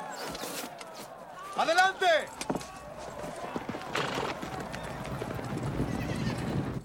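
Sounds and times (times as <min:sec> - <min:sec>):
horses galloping with riders during a battle charge: 0:01.5 - 0:06.7.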